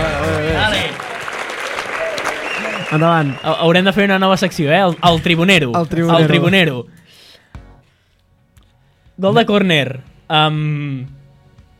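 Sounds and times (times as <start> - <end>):
applause sound effect of a dense crowd clapping: 0.0 - 6.0
speech: 2.9 - 7.0, 9.2 - 11.2.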